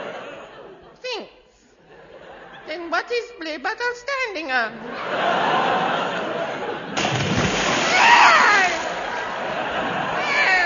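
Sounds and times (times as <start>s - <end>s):
laughter: 0.0s - 1.0s, 1.8s - 2.7s, 4.8s - 10.6s
speech: 2.7s - 5.6s
splash of person falling into water: 7.0s - 9.2s
water churning and sloshing: 7.0s - 9.8s.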